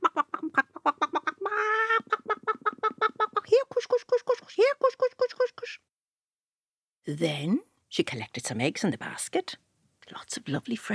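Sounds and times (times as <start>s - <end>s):
chicken drawn-out squawk: 0.0s - 3.5s
chickens clucking: 0.0s - 4.4s
speech: 7.1s - 10.9s.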